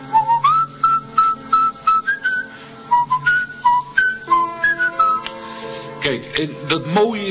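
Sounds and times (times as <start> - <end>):
person whistling a melody from an organ concerto: 0.1 - 5.3
speech: 6.0 - 7.2.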